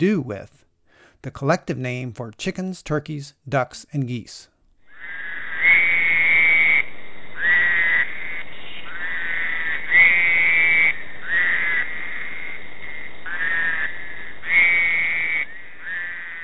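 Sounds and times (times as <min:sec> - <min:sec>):
speech: 0:00.0 - 0:05.2
Fowler's toad calls along the James River in Virginia: 0:04.9 - 0:16.4.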